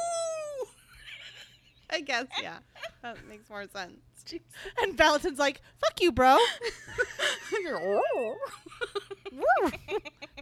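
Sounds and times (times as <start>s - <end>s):
speech: 2.0s - 10.2s
person imitating a wolf barking: 9.4s - 9.8s.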